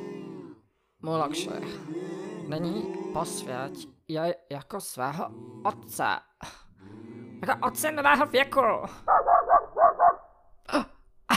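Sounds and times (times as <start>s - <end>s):
speech: 1.0s - 9.4s
dog barking: 9.0s - 10.3s.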